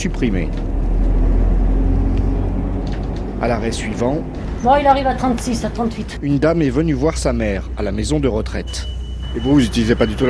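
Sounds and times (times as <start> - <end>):
speech: 0.0 - 0.7, 3.4 - 10.2
bus engine rumble pulling away from a small station: 0.0 - 10.2.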